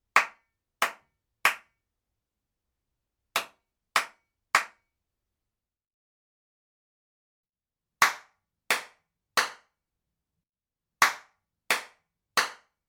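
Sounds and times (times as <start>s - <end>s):
hand claps in a toilet: 0.1s - 1.8s, 3.4s - 4.9s, 8.0s - 9.8s, 11.0s - 12.8s.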